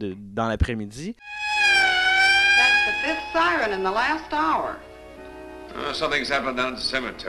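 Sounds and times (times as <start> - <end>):
speech: 0.0 - 1.8, 3.0 - 4.9, 5.7 - 7.2
emergency vehicle sirens wailing: 1.3 - 4.1.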